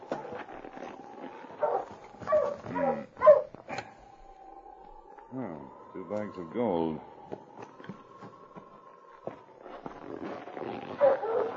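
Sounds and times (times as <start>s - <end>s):
husky sled dog barking and whimpering: 1.6s - 3.9s, 10.9s - 11.5s
speech: 6.1s - 7.5s.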